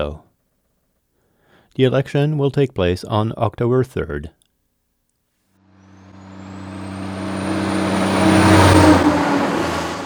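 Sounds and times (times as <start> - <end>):
speech: 0.0 - 0.2, 1.8 - 4.4
heavy truck rumbling along a town truck route: 5.7 - 10.0.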